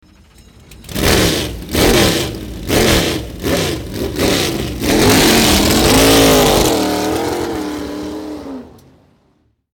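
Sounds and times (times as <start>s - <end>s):
Lola T332 race car engine: 0.5s - 9.5s.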